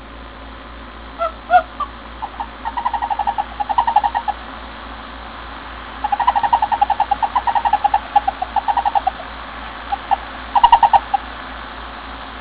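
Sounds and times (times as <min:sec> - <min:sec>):
male Bombina frogs: 0:01.2 - 0:04.7, 0:05.9 - 0:12.1.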